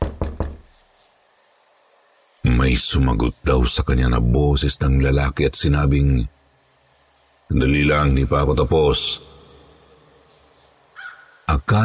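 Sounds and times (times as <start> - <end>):
knocks on a wooden bathroom door: 0.0 - 0.7
speech: 2.6 - 6.4, 7.5 - 9.3, 11.5 - 11.8.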